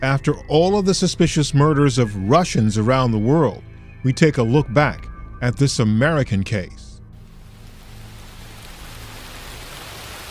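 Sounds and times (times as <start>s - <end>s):
speech: 0.0s - 6.8s
rain pouring onto a hard surface on a cold night in Adelphi Maryland: 7.2s - 10.3s.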